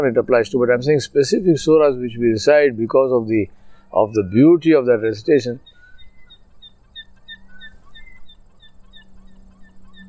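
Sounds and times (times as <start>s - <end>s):
speech: 0.0s - 5.7s
gulls calling overhead with short high cries: 0.0s - 10.0s
low hum: 0.0s - 10.0s.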